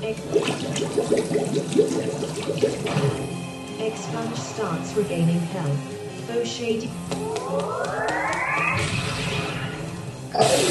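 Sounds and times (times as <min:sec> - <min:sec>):
rehydrate water ability effect bubbling and splashing in a turn-based video game: 0:00.1 - 0:03.7
speech: 0:04.1 - 0:09.5, 0:10.3 - 0:10.6.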